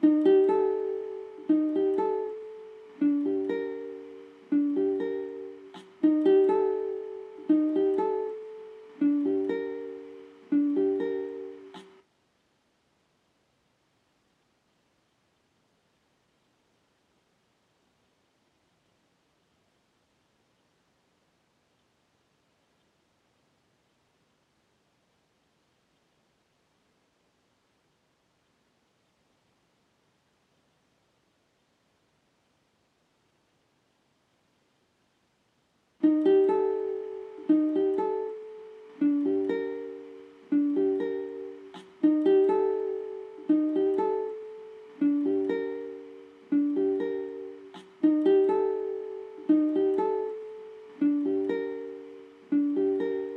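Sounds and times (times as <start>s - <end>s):
guitar loop in G minor at 80 BPM: 0.0s - 12.0s, 36.0s - 53.3s.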